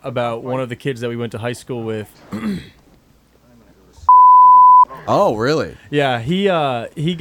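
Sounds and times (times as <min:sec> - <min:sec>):
speech: 0:00.0 - 0:02.8, 0:05.1 - 0:07.1
censor bleep tone: 0:04.1 - 0:04.9
murmuring voices: 0:04.9 - 0:05.9.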